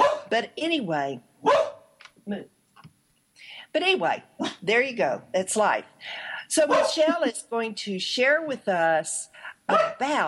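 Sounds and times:
dog barking and yelping: 0.0s - 0.3s, 1.4s - 1.9s, 6.7s - 7.0s, 9.7s - 10.0s
speech: 0.3s - 1.6s, 2.3s - 2.6s, 3.4s - 10.2s.

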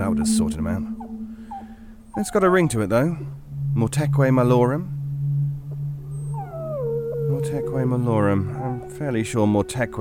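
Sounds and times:
speech: 0.0s - 1.1s, 2.1s - 5.0s, 7.3s - 9.9s
dog howling: 0.7s - 2.8s, 6.1s - 9.9s.

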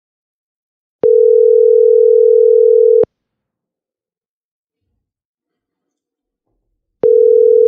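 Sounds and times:
telephone call ringback tone over the line: 1.0s - 3.1s, 7.0s - 7.6s.

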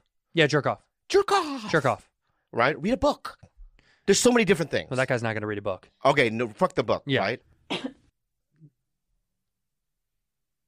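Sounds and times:
speech: 0.4s - 7.9s
sharp loud cough: 7.7s - 8.1s.

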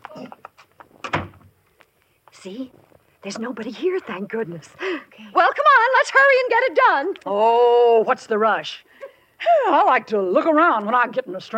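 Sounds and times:
side door of a house being unlatched and opened: 1.0s - 1.5s
speech: 2.4s - 11.5s.

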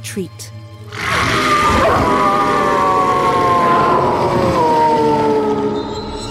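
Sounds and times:
speech: 0.0s - 0.5s
pack howling in unison: 0.9s - 6.2s.

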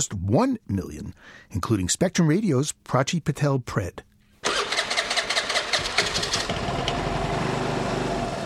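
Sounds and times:
speech: 0.0s - 4.1s
brand-new bright yellow motor scooter engine cranking: 4.4s - 7.8s
brand-new bright yellow motor scooter engine idling: 4.5s - 8.4s.

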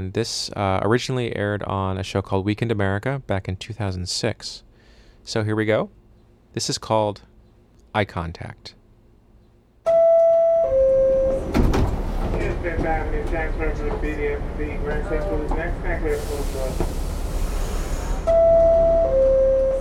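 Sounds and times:
speech: 0.0s - 6.0s, 6.6s - 7.3s, 7.9s - 8.8s, 12.6s - 17.0s
subway car two-tone door chime: 9.9s - 11.6s, 18.3s - 19.7s
subway rail rumble: 10.8s - 19.7s
subway doors hissing: 11.2s - 18.8s
subway passenger chatter: 12.3s - 17.4s.

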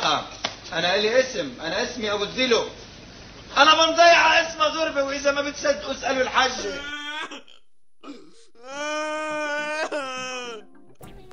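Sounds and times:
speech: 0.1s - 2.8s, 3.5s - 7.0s
person whimpering sob and long drawn-out wail: 6.6s - 10.8s.

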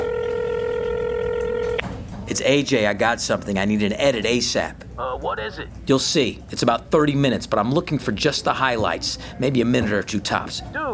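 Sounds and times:
steady telephone tone: 0.0s - 1.8s
speech: 2.3s - 10.9s.

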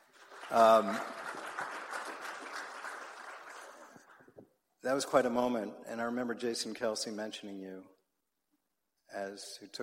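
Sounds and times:
crowd clapping: 0.0s - 4.4s
speech: 0.5s - 1.2s, 4.8s - 8.0s, 9.1s - 9.8s.

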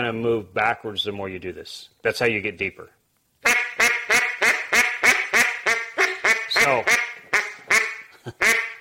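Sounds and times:
speech: 0.0s - 3.6s, 6.6s - 7.0s
duck call blown with tongue-cut hen quack notes: 3.4s - 8.7s.

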